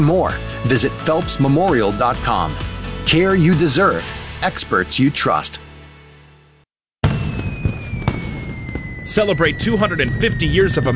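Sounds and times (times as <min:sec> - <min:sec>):
speech: 0:00.0 - 0:05.6, 0:09.0 - 0:10.9
fireworks bursting at a lakeside Independence Day show: 0:07.0 - 0:10.6
whistling tone falling in pitch: 0:07.2 - 0:10.9.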